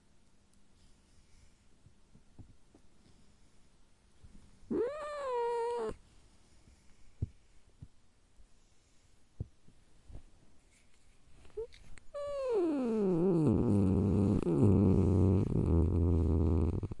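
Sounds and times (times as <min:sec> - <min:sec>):
domestic cat growling into a low rumble: 0:04.7 - 0:06.0, 0:12.2 - 0:16.9.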